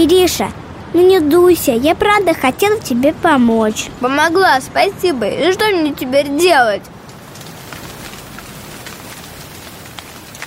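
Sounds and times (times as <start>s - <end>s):
speech: 0.0s - 6.9s
steady rain hiss: 0.0s - 10.4s
raindrops tapping on a surface: 7.0s - 10.4s.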